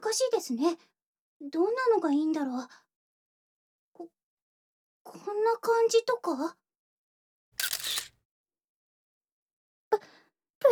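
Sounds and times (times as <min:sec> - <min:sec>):
speech: 0:00.1 - 0:02.9, 0:04.0 - 0:04.2, 0:05.0 - 0:06.6, 0:09.9 - 0:10.7
camera shutter firing during a posed photo shoot: 0:07.6 - 0:08.1.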